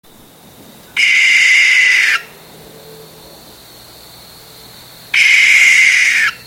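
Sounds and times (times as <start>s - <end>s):
barn owl giving harsh hissing screeches: 0.9s - 3.1s, 5.1s - 6.4s.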